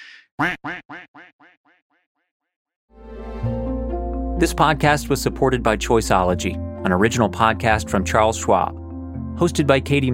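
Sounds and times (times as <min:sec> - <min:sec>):
duck quacking: 0:00.0 - 0:01.8
speech: 0:00.4 - 0:01.0, 0:04.4 - 0:08.8, 0:09.4 - 0:10.1
music: 0:02.9 - 0:10.1.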